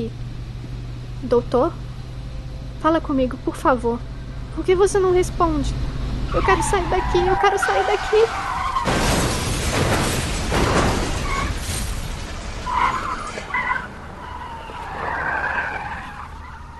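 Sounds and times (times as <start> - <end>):
speech: 0.0 - 0.2, 1.2 - 1.9, 2.8 - 9.0
car tires screeching and skidding at speed: 5.8 - 16.7.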